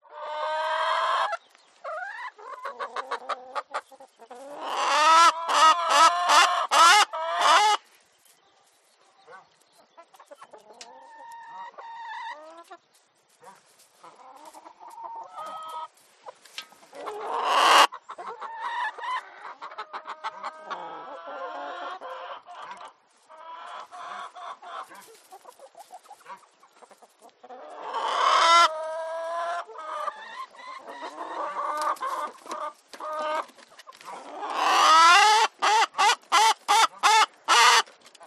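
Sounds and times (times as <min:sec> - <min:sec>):
chickens in a coop: 0:00.0 - 0:38.2.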